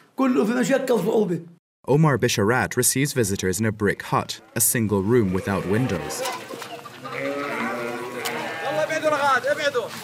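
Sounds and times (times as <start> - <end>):
speech: 0.2 - 6.7, 9.0 - 10.0
several sheep bleating in an enclosure under a corrugated iron roof: 4.4 - 9.2.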